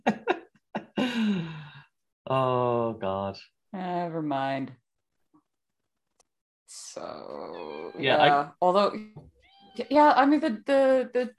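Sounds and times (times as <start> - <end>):
speech: 2.3 - 4.8, 6.7 - 11.3
cat meowing: 9.4 - 9.9.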